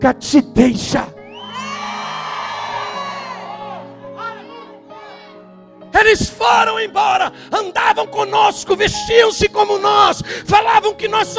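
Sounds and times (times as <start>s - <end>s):
speech: 0.0s - 1.1s, 6.1s - 11.3s
large audience shouting and cheering: 1.2s - 5.7s.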